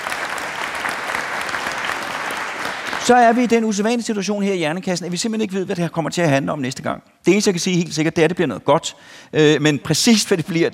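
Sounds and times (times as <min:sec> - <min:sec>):
audience applause for production crew members: 0:00.0 - 0:03.4
speech: 0:03.0 - 0:10.7.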